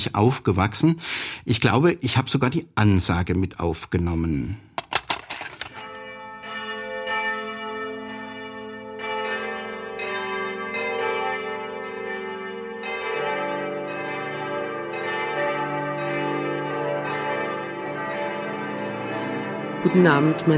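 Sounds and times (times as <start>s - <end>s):
speech: 0.0s - 4.7s, 19.9s - 20.5s
several large church bells ringing in a full peal: 5.7s - 20.5s.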